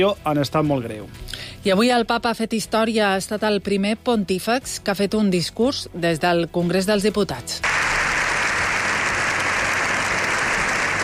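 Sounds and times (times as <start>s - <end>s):
speech: 0.0s - 7.7s
large crowd giving standing ovation applause in parliament: 7.6s - 11.0s.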